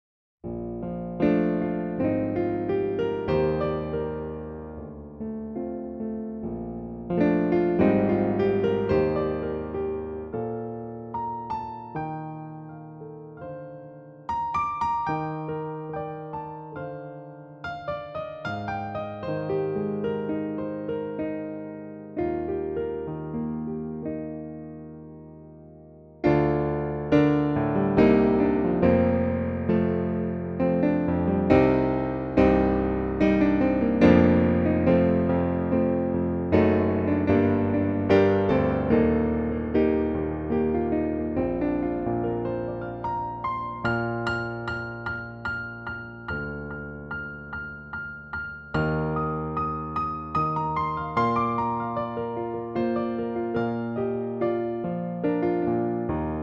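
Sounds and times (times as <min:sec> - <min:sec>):
grand piano: 0:00.4 - 0:56.4.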